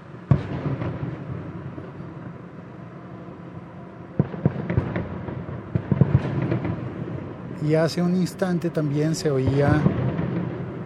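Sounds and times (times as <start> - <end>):
fireworks bang outside: 0.2 - 2.1, 4.2 - 7.4, 9.2 - 10.8
fireworks crackling pops outside: 0.3 - 2.0, 4.2 - 7.0, 9.0 - 10.8
speech: 7.6 - 10.0.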